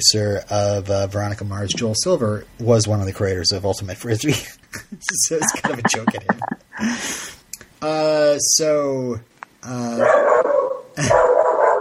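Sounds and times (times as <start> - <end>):
speech: 0.0 - 7.2, 7.8 - 10.4, 11.0 - 11.3
laughter: 4.8 - 6.6
dog barking and whining: 10.0 - 11.8.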